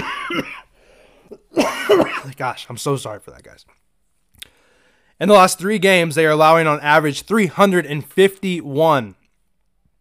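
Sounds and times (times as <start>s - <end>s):
person with lingering cough coughing harshly: 0.0s - 0.7s, 1.3s - 2.4s
speech: 0.3s - 0.6s, 1.3s - 3.8s, 5.2s - 9.2s.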